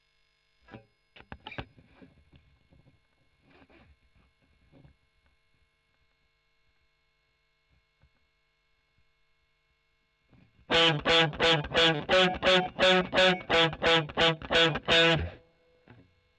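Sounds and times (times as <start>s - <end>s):
overdriven electric guitar: 10.7s - 16.0s.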